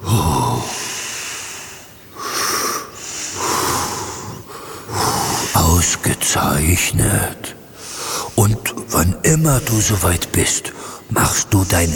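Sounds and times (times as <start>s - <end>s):
slow calm breathing in and out: 0.0s - 6.3s, 7.7s - 8.9s, 10.6s - 11.2s
speech: 5.8s - 7.6s, 8.4s - 11.9s.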